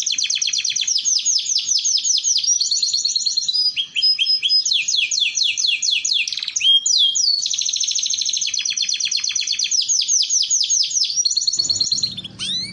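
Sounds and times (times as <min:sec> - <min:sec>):
Belgian canary song with rapid trills of repeated sweeping notes: 0:00.0 - 0:12.7.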